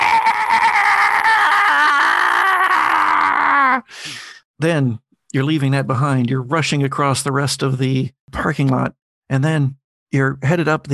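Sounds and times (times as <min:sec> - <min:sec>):
creature's harsh monstrous wailing screech: 0:00.0 - 0:03.8
speech: 0:04.6 - 0:10.9.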